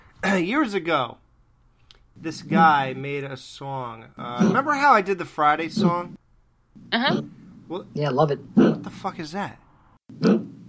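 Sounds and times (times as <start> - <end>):
speech: 0.3 - 1.2, 2.2 - 6.2, 6.8 - 10.5
chihuahua coughing harshly: 4.4 - 4.6, 8.6 - 8.9.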